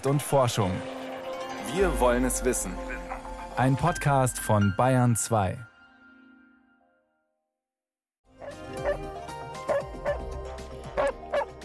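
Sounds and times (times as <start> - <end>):
speech: 0.0 - 1.0, 1.6 - 3.0, 3.6 - 5.7
several dogs barking: 8.4 - 10.3, 10.9 - 11.6.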